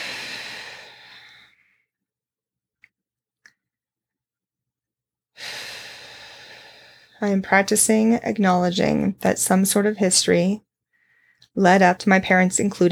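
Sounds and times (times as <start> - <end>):
slow deep breathing by someone sitting up tall with palms open: 0.0 - 1.9, 5.4 - 7.2, 10.9 - 11.5
speech: 7.2 - 10.7, 11.6 - 12.9.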